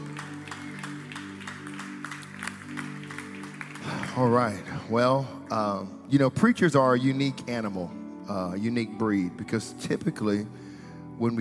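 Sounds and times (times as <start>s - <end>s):
audience clapping rhythmically in a large room: 0.0s - 4.9s
speech: 4.2s - 10.6s, 11.2s - 11.3s.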